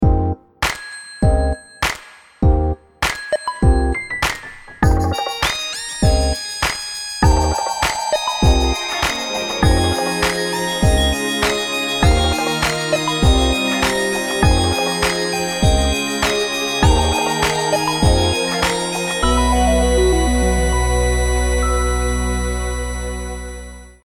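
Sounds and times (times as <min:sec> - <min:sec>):
urban beat on SU370 Optimus One: 0:00.6 - 0:19.5
alarms on SU370 Optimus One: 0:05.1 - 0:24.0.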